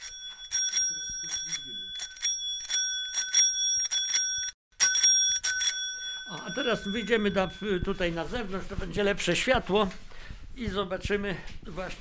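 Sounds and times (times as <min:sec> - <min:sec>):
old bicycle bell with nickel dome ringing: 0:00.0 - 0:08.2
speech: 0:06.6 - 0:12.0.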